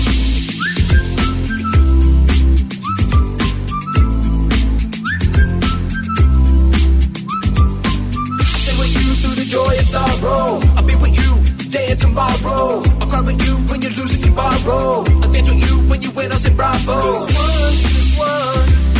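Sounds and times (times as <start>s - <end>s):
short rising whistle blasts: 0.0s - 9.8s
loud driving music track with heavy bass and drums: 0.0s - 18.9s.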